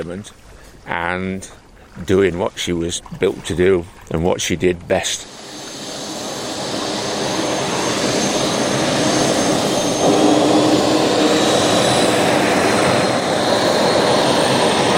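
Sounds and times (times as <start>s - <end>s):
speech: 0.0s - 5.4s
hydroplane boat jet engine roaring during tests before launch: 5.2s - 14.9s.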